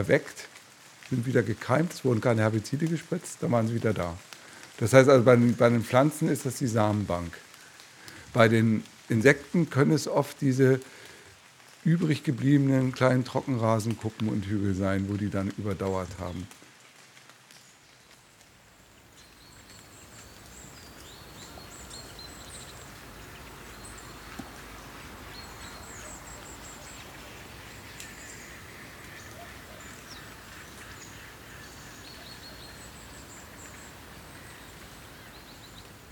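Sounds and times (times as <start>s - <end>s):
speech: 0.0s - 0.5s, 1.1s - 7.5s, 8.3s - 11.0s, 11.8s - 16.6s
chorus of migrating waterfowl calling over open lake water: 24.4s - 35.7s.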